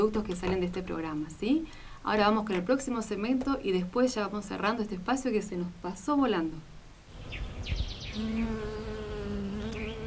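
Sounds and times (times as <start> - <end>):
speech: 0.0 - 6.7, 7.3 - 8.8
bees buzzing: 7.1 - 10.0.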